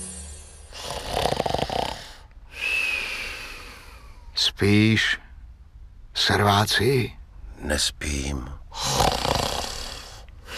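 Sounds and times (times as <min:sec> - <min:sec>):
man snoring loudly: 0:00.7 - 0:02.8, 0:08.8 - 0:10.5
speech: 0:04.6 - 0:05.2, 0:06.3 - 0:09.1.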